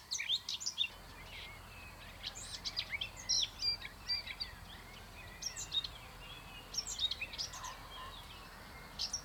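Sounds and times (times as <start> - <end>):
Sylvia communis territorial song: 0.1 - 9.2.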